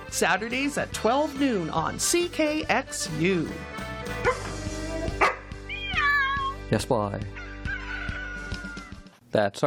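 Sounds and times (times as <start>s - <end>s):
music bed in a radio show promo: 0.0s - 9.6s
speech: 0.1s - 4.4s, 6.7s - 7.4s, 9.3s - 9.6s
two pet dogs barking: 4.2s - 5.5s.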